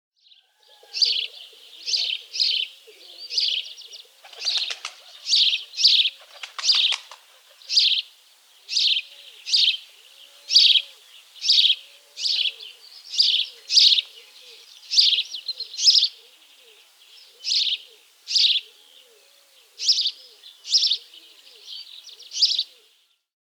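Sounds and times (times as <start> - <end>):
Eurasian tree sparrow singing: 0.2 - 23.1.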